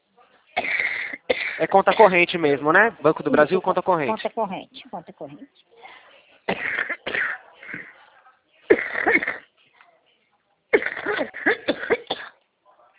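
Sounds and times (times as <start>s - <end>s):
harsh wet coughing from a person: 0.6s - 2.3s, 6.5s - 7.9s, 8.7s - 9.5s, 10.8s - 12.4s
speech: 1.6s - 6.8s.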